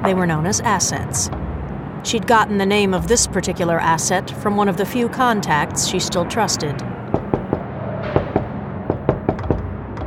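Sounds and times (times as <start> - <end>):
speech: 0.0 - 1.4, 2.0 - 6.9
patterned coded knock on a door: 7.1 - 7.6, 8.2 - 10.0.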